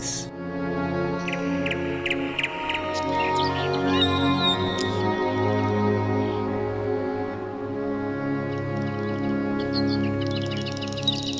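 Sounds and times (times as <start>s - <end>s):
steady sustained tonal background: 0.0s - 11.3s
birds chirping and twittering: 1.1s - 6.5s, 8.2s - 11.3s.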